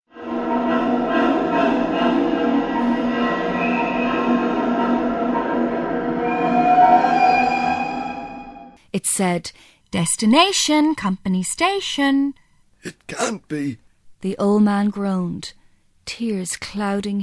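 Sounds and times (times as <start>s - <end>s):
train pulling into station: 0.1s - 8.8s
speech: 9.0s - 17.2s.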